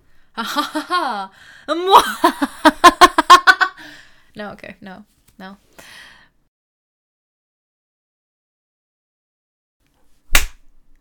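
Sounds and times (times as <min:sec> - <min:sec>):
speech: 0:00.4 - 0:03.0, 0:03.8 - 0:06.0
hand slapping a knee: 0:10.3 - 0:10.8.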